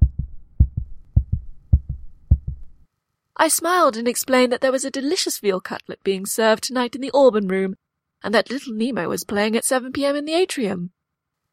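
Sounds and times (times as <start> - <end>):
pounding heartbeat of a woman: 0.0 - 2.8
speech: 3.4 - 11.0.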